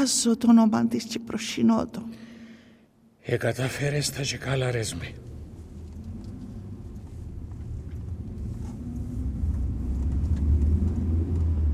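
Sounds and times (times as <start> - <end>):
speech: 0.0 - 2.3, 3.2 - 5.4
approaching car engine rumbling low and steady: 4.8 - 11.7.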